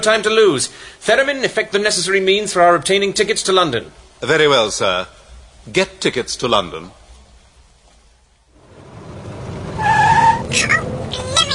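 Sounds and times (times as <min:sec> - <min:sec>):
speech: 0:00.0 - 0:07.0, 0:10.5 - 0:11.2
car engine swelling: 0:08.5 - 0:11.5
car tires squealing: 0:08.6 - 0:11.5.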